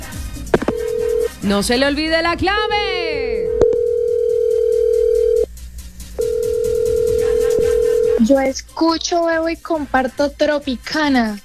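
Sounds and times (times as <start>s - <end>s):
telephone dial tone: 0.0s - 8.6s
speech: 1.4s - 3.1s, 8.3s - 11.4s.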